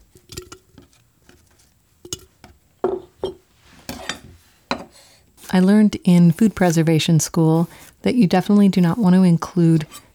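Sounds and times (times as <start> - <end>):
knife slicing small pickling cucumbers: 5.4 - 10.1
speech: 5.5 - 10.0.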